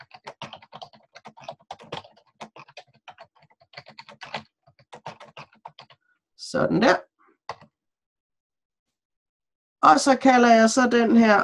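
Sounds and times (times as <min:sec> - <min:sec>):
typing on a computer keyboard: 0:00.0 - 0:06.0, 0:07.5 - 0:07.8
speech: 0:06.5 - 0:07.1, 0:09.8 - 0:11.4.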